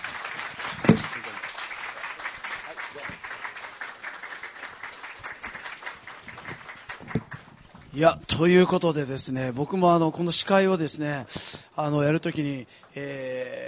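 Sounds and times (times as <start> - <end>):
audience applauding a guest teacher: 0.0 - 7.9
sharp louder claps: 0.0 - 8.0
speech: 8.0 - 13.6.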